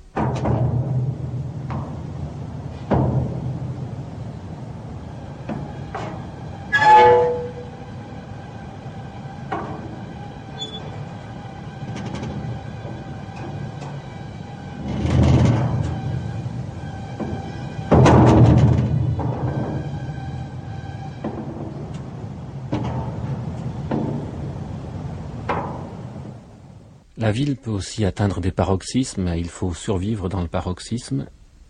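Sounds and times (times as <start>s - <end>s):
sharp clanks of metro train: 0.0s - 8.0s, 9.4s - 26.3s
metro train rumbling into a station: 0.0s - 28.3s
metro train brake squeal: 1.0s - 26.8s
speech: 27.3s - 31.4s.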